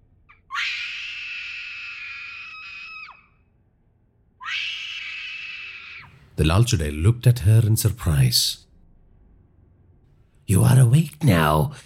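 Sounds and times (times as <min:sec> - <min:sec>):
woman screaming in terror echoing in a cave: 0:00.5 - 0:03.4, 0:04.4 - 0:06.1
speech: 0:06.4 - 0:08.7, 0:10.5 - 0:11.8.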